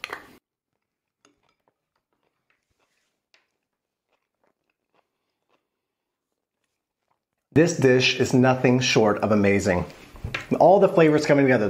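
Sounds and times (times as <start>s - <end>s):
crunchy chewing of cucumber salad with buttermilk and sour cream: 0.1s - 7.5s
speech: 7.6s - 11.6s.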